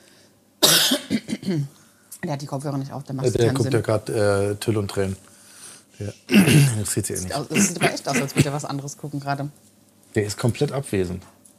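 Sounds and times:
person coughing into a microphone: 0.6s - 1.7s, 6.3s - 8.6s
speech: 1.5s - 5.3s, 6.0s - 11.4s.

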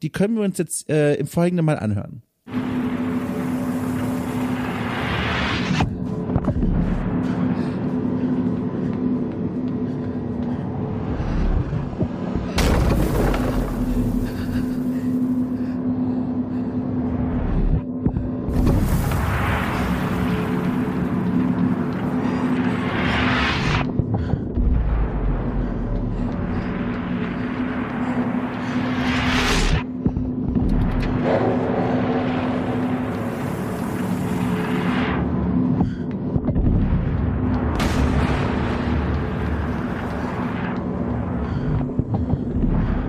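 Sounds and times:
speech: 0.0s - 2.6s
steady low hum: 2.3s - 43.0s
video game shockwave rumbling drone in a vast hall: 2.5s - 43.0s.

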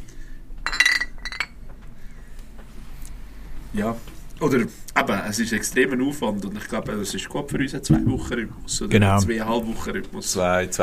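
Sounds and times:
beer glasses clinking in a toast: 0.6s - 1.6s
speech: 3.7s - 10.8s.

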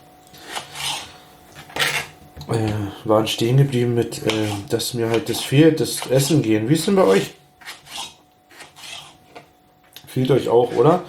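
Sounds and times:
knife cutting gherkins: 0.4s - 2.1s, 4.0s - 9.4s, 10.4s - 11.0s
speech: 2.4s - 7.4s, 10.2s - 11.0s.

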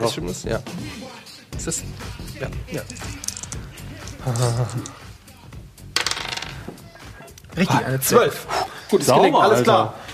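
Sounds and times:
speech: 0.0s - 3.2s, 4.2s - 5.0s, 7.6s - 10.1s
dice clattering across a hard table in a tabletop role-playing game: 6.0s - 6.7s.

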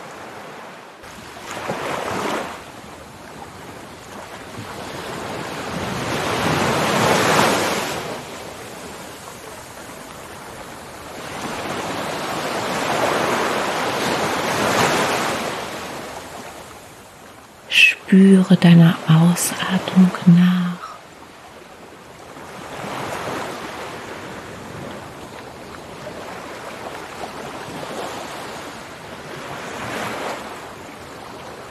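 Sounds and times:
ocean waves breaking on shore: 0.0s - 31.7s
speech: 18.1s - 20.6s.

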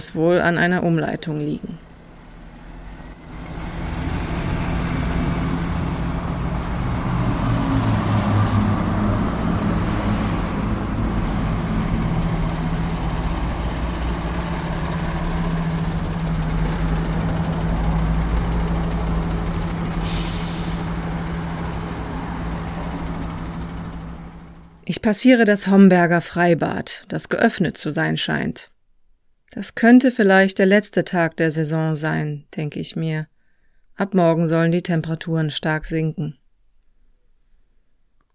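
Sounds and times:
speech: 0.0s - 1.9s, 25.0s - 28.7s, 29.5s - 33.3s, 34.0s - 36.4s
many car and truck engines idling in a traffic jam on a clogged access road: 1.2s - 24.9s.

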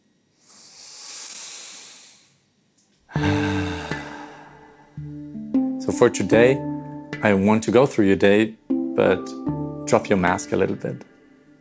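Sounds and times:
deep breath inhale: 0.4s - 2.4s, 3.1s - 5.1s
speech: 6.0s - 11.5s.

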